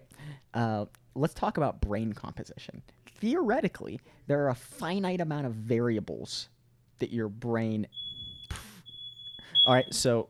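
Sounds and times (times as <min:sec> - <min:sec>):
speech: 0:00.5 - 0:08.1, 0:09.6 - 0:10.2
shrill high-pitched fire alarm tone: 0:07.9 - 0:10.1.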